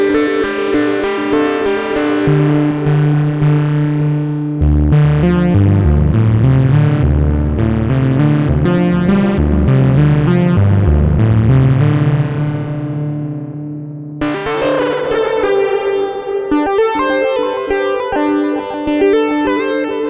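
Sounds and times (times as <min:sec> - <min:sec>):
Arturia Minibrute and Moog MF103 synthesizer lead: 0:00.1 - 0:19.9.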